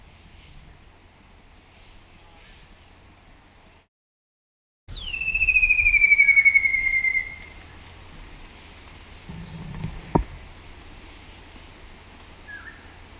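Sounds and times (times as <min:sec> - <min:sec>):
shrill insect hum: 0:00.0 - 0:03.9, 0:04.9 - 0:13.1
Myiagra alecto wardelli shining flycatcher calling with a wavering falling whistle: 0:04.9 - 0:07.8
soft knock: 0:09.3 - 0:10.5.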